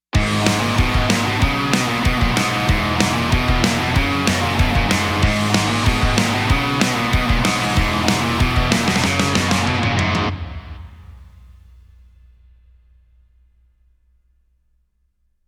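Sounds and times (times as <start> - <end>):
compressed drums: 0.2 - 12.0.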